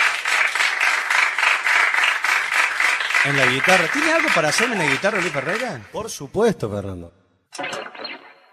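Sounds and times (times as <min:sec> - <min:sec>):
audience applause for a musician at a live comedy and music show: 0:00.0 - 0:06.0
speech: 0:03.2 - 0:07.8.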